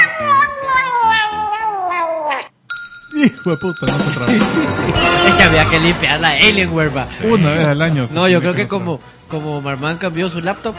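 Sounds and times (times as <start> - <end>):
cat meowing in a long caterwaul: 0.0 - 2.6
speech: 3.2 - 10.7.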